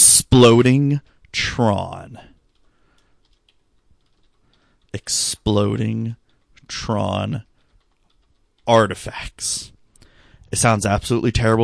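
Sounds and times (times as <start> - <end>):
speech: 0.3 - 2.3, 4.9 - 7.5, 8.7 - 9.7, 10.5 - 11.6
typing on a computer keyboard at a desk: 2.3 - 9.0.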